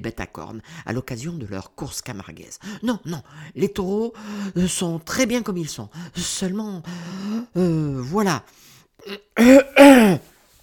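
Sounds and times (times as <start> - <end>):
speech: 0.0 - 10.3
man clearing his throat: 9.1 - 10.3.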